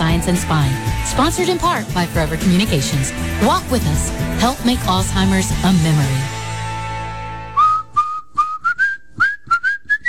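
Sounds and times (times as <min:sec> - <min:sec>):
speech: 0:00.2 - 0:06.4
person whistling a short bouncy tune: 0:07.5 - 0:10.0.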